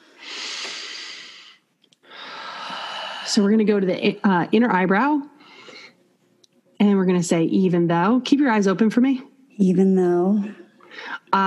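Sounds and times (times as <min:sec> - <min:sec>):
deep breath in and out: 0:00.0 - 0:03.4, 0:05.4 - 0:06.1, 0:10.8 - 0:11.3
speech: 0:03.3 - 0:05.3, 0:07.1 - 0:10.6.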